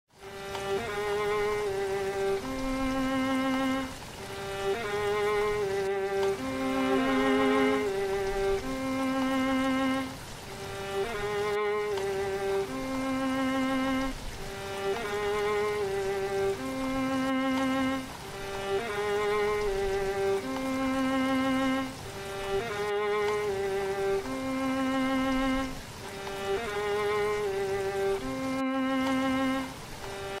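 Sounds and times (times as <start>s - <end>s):
rain: 0.1s - 30.3s
violin: 0.2s - 30.3s.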